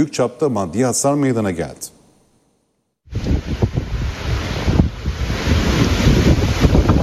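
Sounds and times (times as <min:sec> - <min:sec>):
speech: 0:00.0 - 0:01.9
strong storm wind roaring and buffeting: 0:03.1 - 0:07.0.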